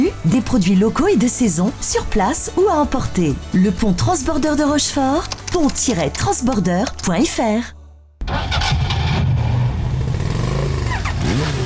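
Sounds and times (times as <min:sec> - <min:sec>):
speech: 0:00.2 - 0:07.8
engine cranking, starting and revving: 0:08.2 - 0:11.6.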